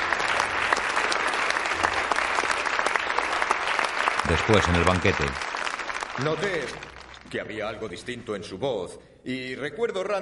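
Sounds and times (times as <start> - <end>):
crowd applauding at a wedding ceremony: 0.0 - 7.4
speech: 4.3 - 5.5, 6.2 - 10.1.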